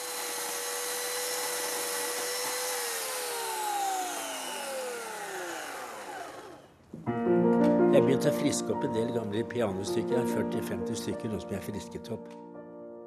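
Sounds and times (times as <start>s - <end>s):
electric chainsaw motor winding down: 0.0s - 6.8s
speech: 8.0s - 12.5s.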